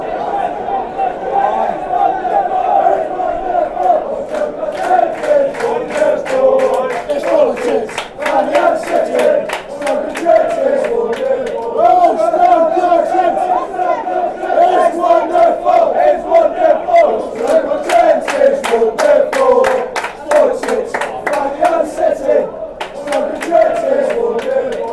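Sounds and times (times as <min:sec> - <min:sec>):
football fans chanting: 0:00.0 - 0:24.9.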